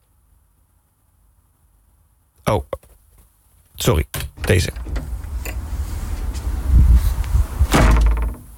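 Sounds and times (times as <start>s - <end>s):
speech: 2.5s - 2.7s, 3.8s - 4.9s
shuffling movement: 2.8s - 7.7s
door slamming shut: 4.1s - 5.7s, 7.6s - 8.5s
low rumbling: 4.4s - 8.5s.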